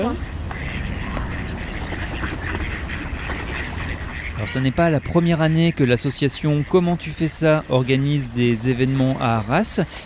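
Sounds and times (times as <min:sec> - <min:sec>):
speech: 0:00.0 - 0:00.3, 0:04.4 - 0:10.0
flock of ducks quacking while being fed: 0:00.0 - 0:09.9.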